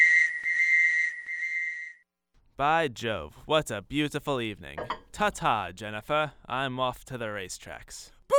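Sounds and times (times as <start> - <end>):
whistle blowing: 0.0 - 2.0
speech: 2.6 - 8.2.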